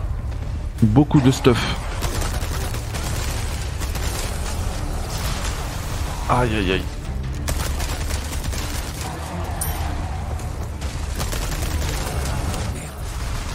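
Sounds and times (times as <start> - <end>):
speech: 0.8 - 1.8, 6.3 - 6.9
video game gunfire in a castle setting: 1.8 - 6.2, 7.4 - 9.9, 10.5 - 13.5.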